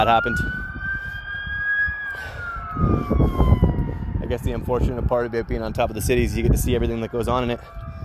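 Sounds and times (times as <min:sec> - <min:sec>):
speech: 0:00.0 - 0:00.6, 0:02.8 - 0:03.6, 0:04.3 - 0:07.8
constant low rumble of city traffic: 0:00.0 - 0:08.0
emergency vehicle sirens wailing in a city: 0:00.0 - 0:08.0.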